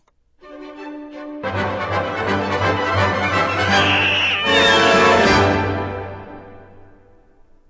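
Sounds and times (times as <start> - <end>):
lush orchestral waltz: 0.4 - 6.8
sliding string glissandi mimicking cat meows: 3.4 - 5.6.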